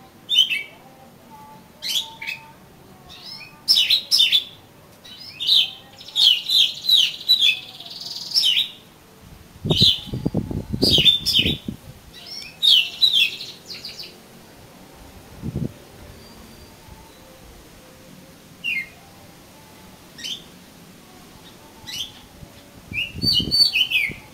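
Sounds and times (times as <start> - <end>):
Oriental magpie-robin singing: 0.1 - 0.8, 1.4 - 8.9, 9.7 - 14.2, 18.6 - 19.0, 20.1 - 20.6, 21.3 - 24.3.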